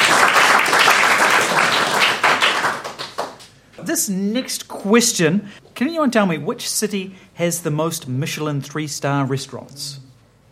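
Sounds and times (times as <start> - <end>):
quiz audience applause: 0.0 - 3.5
speech: 3.9 - 10.1.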